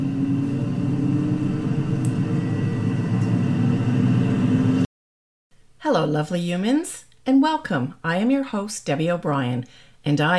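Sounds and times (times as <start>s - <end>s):
airplane engine rumble during takeoff: 0.0s - 4.9s
speech: 5.9s - 10.3s.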